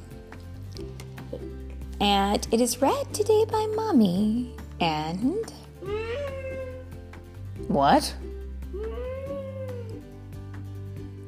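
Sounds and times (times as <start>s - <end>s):
speech: 2.0s - 6.0s, 7.7s - 8.2s
child imitating a cat meow: 5.8s - 6.9s, 8.7s - 10.0s.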